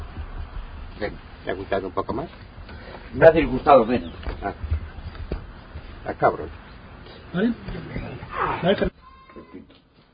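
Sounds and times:
speech: 1.0 - 4.8, 6.1 - 6.6, 7.3 - 9.0
goat bleating: 8.1 - 9.7.

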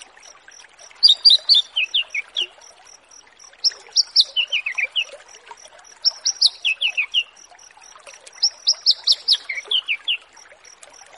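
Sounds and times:
Horsfield's bush lark song: 0.0 - 11.1
faint rhythmic ticking: 0.0 - 11.1.

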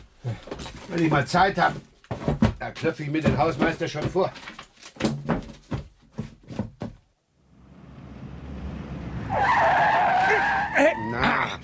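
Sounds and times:
speech: 0.2 - 1.9, 2.7 - 4.5
red Mini car overtaking with engine and road noise: 7.3 - 11.1
Mini car tyres squealing: 9.2 - 11.6.

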